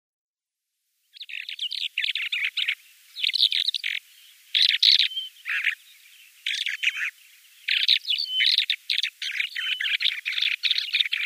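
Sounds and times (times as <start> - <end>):
light steady hiss: 0.6 - 11.2
lesser short-toed lark song: 1.2 - 11.2.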